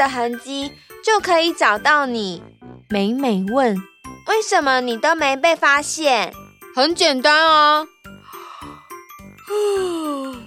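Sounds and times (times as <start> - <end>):
speech: 0.0 - 7.9, 9.5 - 10.1
loud yawn with downward sliding vocal groan: 9.5 - 10.4.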